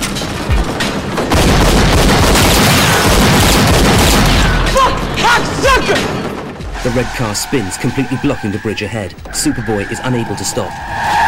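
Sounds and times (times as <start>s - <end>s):
gunfire aimed at a speeding red car: 0.0s - 6.6s
sharp booms: 0.0s - 6.6s
speech: 6.8s - 11.2s.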